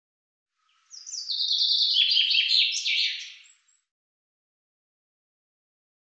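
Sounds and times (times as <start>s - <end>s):
common chaffinch song: 0.6s - 3.9s.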